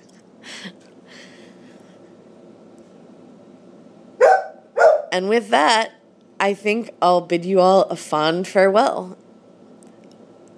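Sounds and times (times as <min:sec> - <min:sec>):
deaf dog barking: 0:04.2 - 0:05.2
speech: 0:05.1 - 0:09.2.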